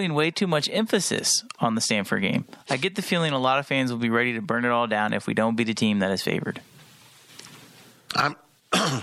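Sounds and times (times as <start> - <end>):
speech: 0.0 - 6.7, 8.1 - 9.0
coughing: 8.1 - 9.0
raspy throat clearing: 8.1 - 9.0.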